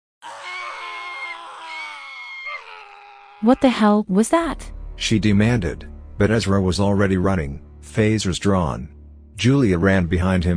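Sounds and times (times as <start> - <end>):
several people screaming in agony: 0.2 - 3.9
speech: 3.4 - 10.5.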